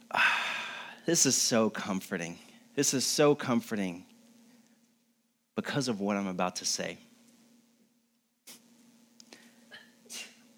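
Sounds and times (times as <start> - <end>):
steady low electrical hum: 0.0 - 10.5
speech: 1.1 - 4.1, 5.6 - 7.1
soft sneezes: 9.7 - 10.5.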